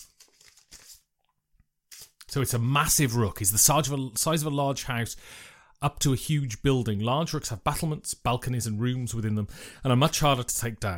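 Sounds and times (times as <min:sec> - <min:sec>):
deck of cards being shuffled: 0:00.0 - 0:01.1, 0:01.9 - 0:02.3
speech: 0:02.3 - 0:10.9.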